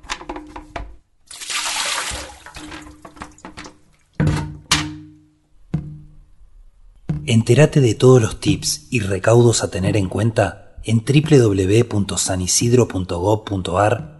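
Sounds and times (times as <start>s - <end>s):
hollow thunks of water containers knocked over or set down: 0.0s - 1.1s, 2.0s - 7.4s
water gushing out of overturned containers: 1.3s - 3.7s
speech: 7.3s - 14.1s.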